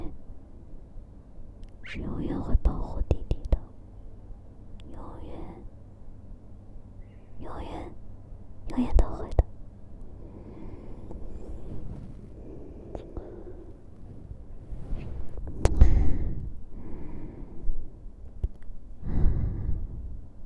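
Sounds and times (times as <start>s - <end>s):
speech: 1.9s - 3.4s
slow heavy breathing against the microphone: 10.0s - 18.1s, 19.0s - 20.3s.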